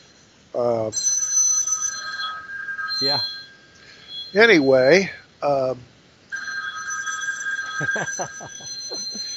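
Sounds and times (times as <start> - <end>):
speech: 0.6 - 1.2, 3.0 - 3.4, 4.3 - 5.9, 7.8 - 9.3
telephone ringing loudly with a bright electronic tone: 0.9 - 5.1, 6.3 - 9.3.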